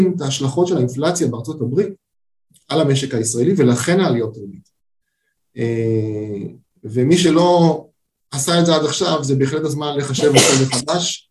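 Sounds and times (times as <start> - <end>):
speech: 0.0 - 2.0, 2.7 - 4.7, 5.6 - 11.2
sneeze: 10.2 - 10.9.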